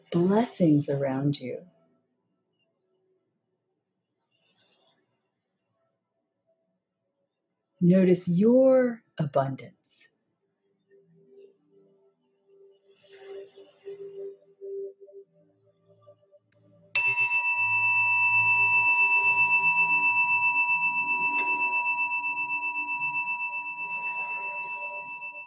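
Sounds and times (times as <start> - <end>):
speech: 0.1 - 1.8, 7.8 - 9.8
meditation chime ringing: 17.0 - 25.4.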